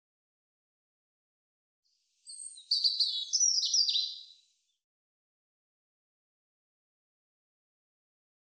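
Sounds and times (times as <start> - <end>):
European robin singing: 2.2 - 4.7.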